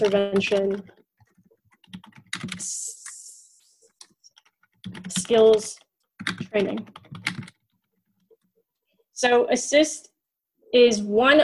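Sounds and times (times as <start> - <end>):
speech: 0.0 - 1.0, 2.4 - 3.0, 4.9 - 7.3, 9.2 - 10.1, 10.7 - 11.4
typing on a computer keyboard: 0.0 - 8.5.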